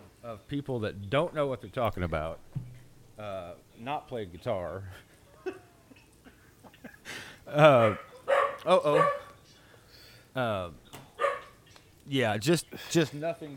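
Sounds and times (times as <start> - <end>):
speech: 0.3 - 5.6, 7.5 - 9.2, 10.4 - 10.8, 12.1 - 13.5
dogs barking excitedly: 7.7 - 9.4, 11.2 - 11.7.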